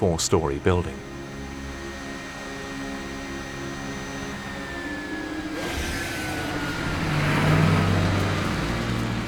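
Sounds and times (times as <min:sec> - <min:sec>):
speech: 0:00.0 - 0:01.1
broadband road noise: 0:04.4 - 0:09.2
security vehicle engines rumbling while driving up to aircraft: 0:05.4 - 0:09.2.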